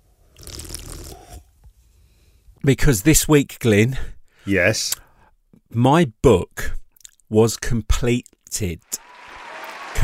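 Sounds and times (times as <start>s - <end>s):
sipping cold cider from a can: 0.3s - 1.5s
gulp: 0.4s - 1.5s
speech: 2.6s - 5.0s, 5.7s - 9.0s.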